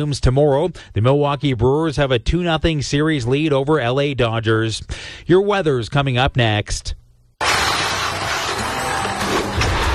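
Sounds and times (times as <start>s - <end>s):
speech: 0.0s - 7.0s
car crash collision: 7.4s - 9.9s
harsh crunching scraping roar: 7.4s - 9.9s.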